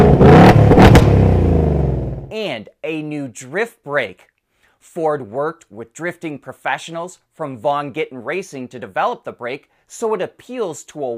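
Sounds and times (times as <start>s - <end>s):
Ford Mustang EcoBoost engine revved remotely with the key fob: 0.0s - 2.3s
speech: 2.6s - 11.1s.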